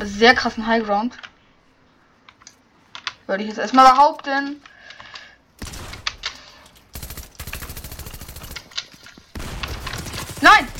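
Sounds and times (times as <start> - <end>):
speech: 0.1 - 1.3, 3.3 - 4.7
video game automatic gunfire: 5.6 - 10.7.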